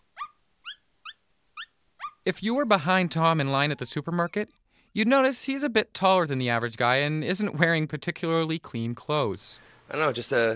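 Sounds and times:
older small shaggy black terrier whimpering: 0.2 - 2.2
speech: 2.3 - 10.5.

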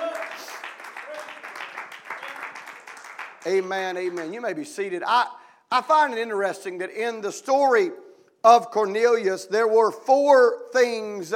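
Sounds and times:
large church audience clapping in praise: 0.0 - 4.6
speech: 3.4 - 11.3.

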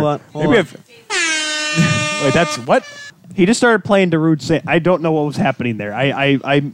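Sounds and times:
speech: 0.0 - 6.7
blaring air horn blast: 1.1 - 3.1
brief vocal-sounding bursts: 1.1 - 3.1.

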